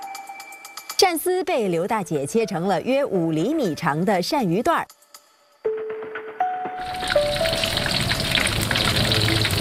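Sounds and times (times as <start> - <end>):
speech: 1.0 - 5.0
pieces of eel belly meat deep-frying in hot oil: 6.8 - 9.5.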